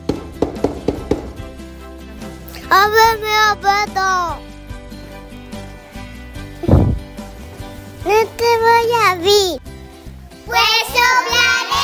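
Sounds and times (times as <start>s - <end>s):
sharp knocks on a wooden door: 0.0s - 1.5s
speech: 2.7s - 4.5s, 8.0s - 9.6s, 10.5s - 11.8s.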